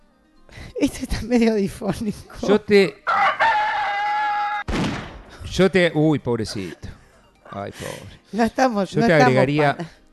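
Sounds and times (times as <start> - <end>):
speech: 0.8 - 3.0, 5.6 - 6.9, 7.5 - 10.0
rooster crowing: 3.0 - 4.7.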